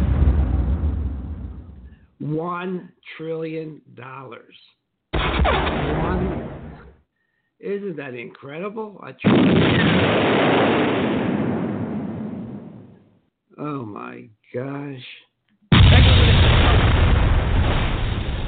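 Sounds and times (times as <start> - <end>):
loud rumbling explosion sound effects: 0.0 - 2.0, 5.2 - 6.9, 9.3 - 13.0, 15.7 - 18.4
speech: 2.3 - 6.5, 7.6 - 11.2, 13.6 - 15.3.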